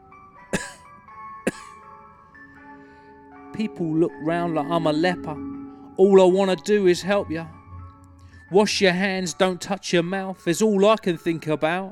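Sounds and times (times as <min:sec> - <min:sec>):
person coughing nervously: 0:00.5 - 0:00.9, 0:01.5 - 0:01.8
steady tonal hum: 0:03.5 - 0:10.0
speech: 0:03.6 - 0:07.6, 0:08.5 - 0:11.9.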